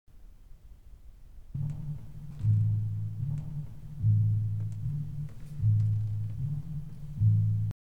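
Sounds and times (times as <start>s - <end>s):
timpani ostinato: 1.6s - 7.8s.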